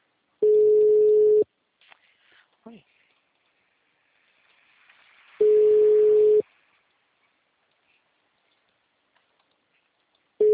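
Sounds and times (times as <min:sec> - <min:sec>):
telephone line tone beep during a call attempt: 0:00.4 - 0:01.4, 0:05.4 - 0:06.4
speech: 0:02.7 - 0:03.0.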